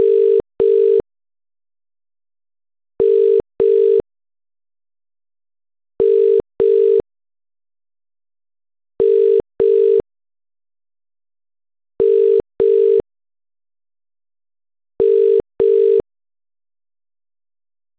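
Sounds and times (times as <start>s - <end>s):
UK telephone ringback tone: 0.0s - 1.0s, 3.0s - 4.0s, 6.0s - 7.0s, 9.0s - 10.0s, 12.0s - 13.0s, 15.0s - 16.0s.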